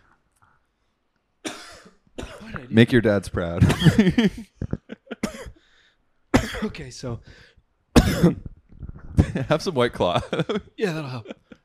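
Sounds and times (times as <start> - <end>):
loud raspy cough: 1.4 - 2.7, 3.6 - 4.5, 5.1 - 5.6, 6.4 - 6.8, 8.0 - 8.5
speech: 2.6 - 4.5, 6.6 - 8.5, 9.2 - 11.4.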